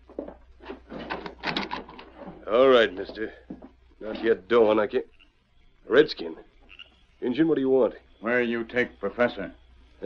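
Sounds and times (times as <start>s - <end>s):
wooden door rattling and scraping creak opening: 0.2s - 3.3s
speech: 2.5s - 5.2s, 5.9s - 6.5s, 7.2s - 10.0s.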